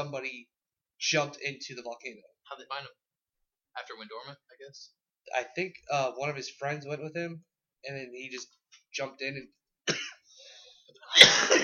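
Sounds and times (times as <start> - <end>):
speech: 0.0 - 3.0, 3.8 - 10.1, 11.1 - 11.6
person coughing: 9.9 - 10.3, 11.1 - 11.6.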